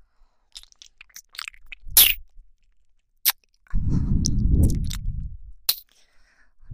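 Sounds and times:
chewing and eating a hamburger steak: 0.5s - 2.2s, 4.2s - 5.1s.

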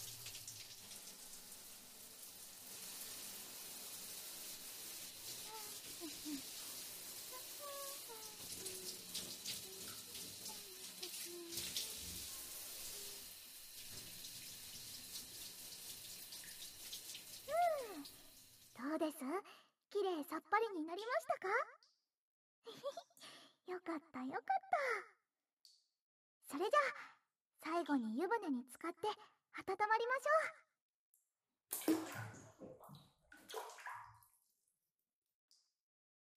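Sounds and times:
running water splashing and pattering: 0.0s - 18.8s, 31.8s - 34.1s
speech: 6.0s - 6.5s, 19.0s - 21.9s, 22.6s - 23.1s, 23.7s - 25.0s, 26.5s - 30.6s.

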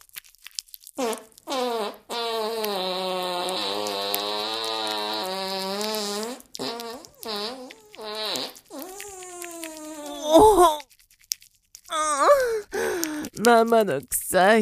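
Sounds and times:
fart: 1.0s - 10.8s
speech: 13.5s - 14.6s.

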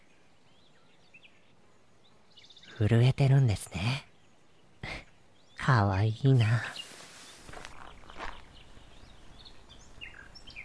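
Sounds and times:
birds chirping and tweeting: 0.0s - 10.6s
speech: 2.8s - 4.1s, 5.7s - 6.8s
soft scuffing footsteps on the ground: 6.8s - 8.7s.

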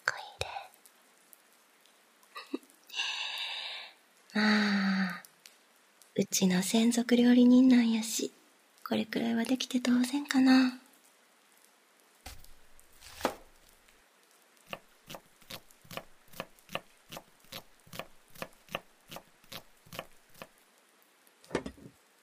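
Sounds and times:
speech: 4.4s - 4.7s, 6.2s - 10.8s
knife chopping food on a cutting board: 14.7s - 20.5s.

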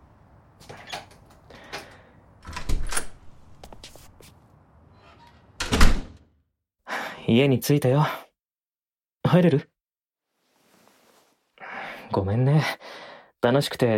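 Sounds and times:
lock and handle clunking and rattling: 0.9s - 3.3s
front door being unlocked with a key and opened: 2.4s - 3.3s, 5.0s - 6.2s
front door thud: 5.6s - 6.2s
speech: 7.3s - 8.2s, 9.3s - 9.7s, 12.1s - 13.9s.

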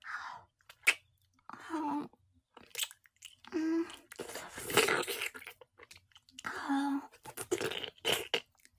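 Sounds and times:
chewing and eating hot food: 2.4s - 8.7s.

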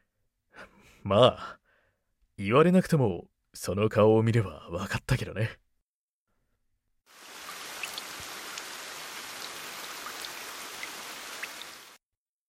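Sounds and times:
speech: 0.6s - 1.6s, 2.4s - 5.6s
steady rain falling: 7.1s - 12.0s.

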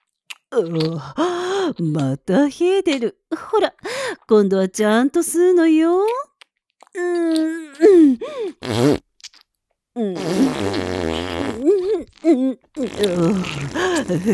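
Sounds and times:
speech: 0.6s - 6.3s, 7.0s - 9.0s, 10.0s - 14.3s
loud fart sounds: 8.6s - 9.4s, 10.2s - 11.7s, 12.8s - 14.1s.

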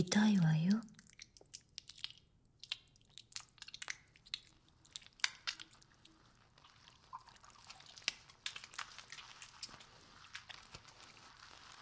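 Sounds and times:
speech: 0.0s - 0.9s
shampoo being lathered into hair: 3.5s - 11.7s.

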